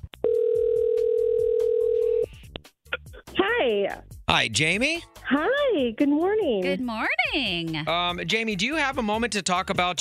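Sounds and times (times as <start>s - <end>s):
steady unbroken telephone tone: 0.2s - 2.3s
speech: 3.9s - 10.0s.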